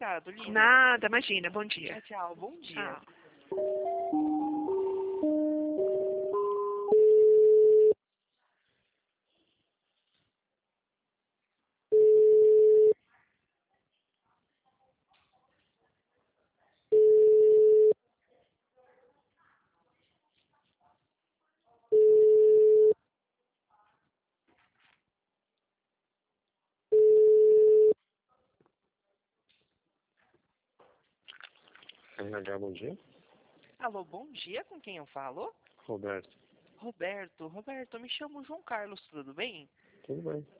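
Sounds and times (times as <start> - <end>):
speech: 0.0 - 4.3, 5.2 - 5.5, 32.3 - 33.1, 33.8 - 40.5
long steady telephone beeps while a call is transferred: 3.5 - 8.0, 11.9 - 13.0, 16.9 - 18.0, 21.9 - 23.0, 26.9 - 28.0
telephone dialing beeps while a call is transferred: 3.6 - 8.0, 27.0 - 28.0.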